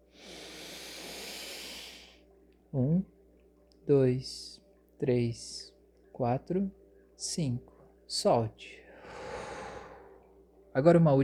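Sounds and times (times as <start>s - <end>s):
deep inhalation through the nose during a guided breathing exercise: 0.1s - 2.2s, 9.0s - 10.2s
speech: 2.7s - 3.2s, 3.9s - 8.8s, 10.8s - 11.2s.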